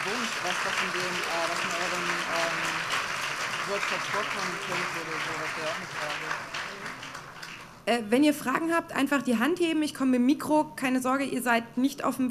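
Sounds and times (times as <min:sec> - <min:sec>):
audience applauding for presenters: 0:00.0 - 0:07.8
speech: 0:00.4 - 0:03.0, 0:03.7 - 0:06.9, 0:07.9 - 0:12.2.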